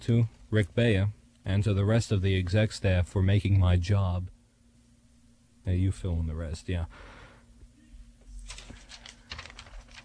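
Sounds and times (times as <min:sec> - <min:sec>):
speech: 0:00.0 - 0:04.4, 0:05.6 - 0:07.1
low steady hum: 0:00.0 - 0:10.0
paper rattled close to a microphone: 0:08.4 - 0:10.0.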